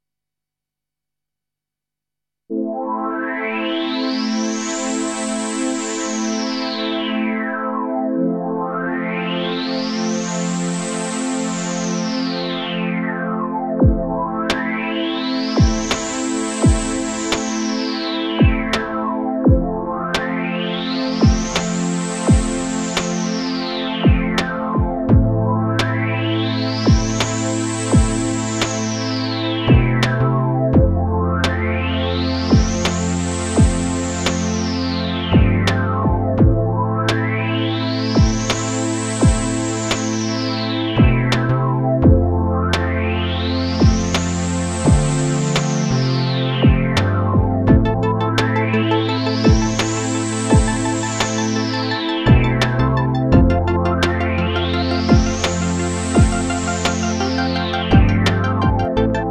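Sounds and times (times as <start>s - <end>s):
synth sweep pad: 2.5s - 59.2s.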